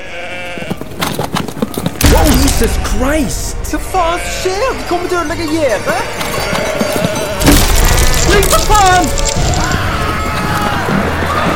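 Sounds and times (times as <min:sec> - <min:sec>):
small flock of sheep bleating: 0:00.0 - 0:01.0, 0:03.9 - 0:11.5
speech: 0:02.6 - 0:07.1, 0:08.4 - 0:09.6.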